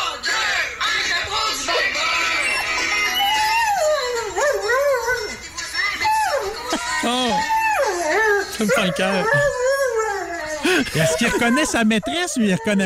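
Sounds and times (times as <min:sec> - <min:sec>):
song playing on the radio: 0:00.0 - 0:09.6
dog at a boarding kennel howling along to a song: 0:01.7 - 0:12.8
laughter: 0:04.4 - 0:09.6, 0:10.5 - 0:12.0
speech: 0:08.6 - 0:09.7, 0:10.6 - 0:12.8.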